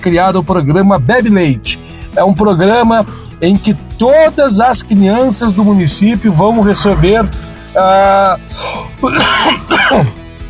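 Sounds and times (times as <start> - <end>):
speech: 0.0 - 10.2
person with an allergy coughing: 8.6 - 10.2
person with an allergy clearing throat: 9.0 - 10.2.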